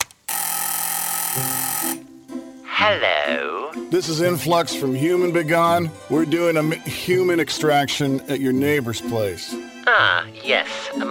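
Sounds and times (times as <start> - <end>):
front gate buzzer giving a harsh electronic buzz: 0.3 - 2.1
speech: 1.3 - 2.1, 2.8 - 11.0.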